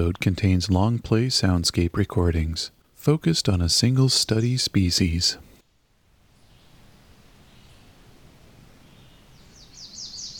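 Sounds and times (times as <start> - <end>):
speech: 0.0 - 5.5
American Redstart warbler singing: 6.3 - 8.0, 8.8 - 10.3.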